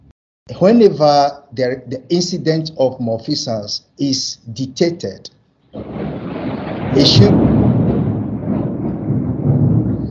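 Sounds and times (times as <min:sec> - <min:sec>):
speech: 0:00.6 - 0:05.9, 0:06.9 - 0:07.5
thunder rumbling through a rainstorm: 0:05.8 - 0:10.0.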